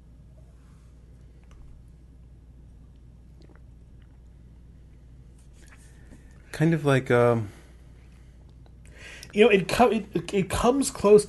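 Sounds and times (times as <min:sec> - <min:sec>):
steady low hum: 0:00.0 - 0:11.2
person sipping beer: 0:02.9 - 0:06.5
speech: 0:06.6 - 0:07.6, 0:09.3 - 0:11.2.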